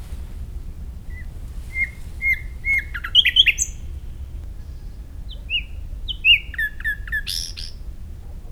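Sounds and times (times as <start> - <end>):
common nightingale Luscinia megarhynchos: 0.0 - 8.5.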